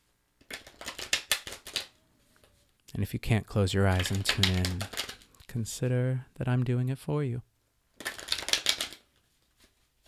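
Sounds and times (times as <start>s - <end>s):
tarot cards being shuffled: 0.4s - 2.7s, 3.8s - 5.4s, 8.0s - 10.0s
speech: 3.0s - 7.5s.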